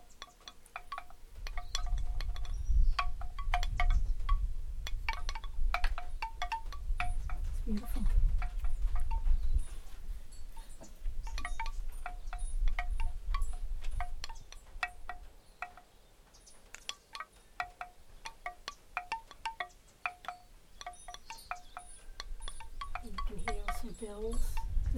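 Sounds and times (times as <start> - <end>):
metallic wind chimes ringing in a breeze: 0.0 - 16.0, 16.7 - 24.9
low rumble of breeze against the microphone: 1.2 - 15.3, 21.6 - 24.9
person speaking: 23.0 - 24.9.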